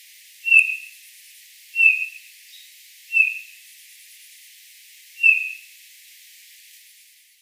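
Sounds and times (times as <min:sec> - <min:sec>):
Eurasian bullfinch Pyrrhula pyrrhula giving soft short piping whistled calls: 0:00.4 - 0:00.9, 0:01.8 - 0:02.2, 0:03.1 - 0:03.5, 0:05.2 - 0:05.6.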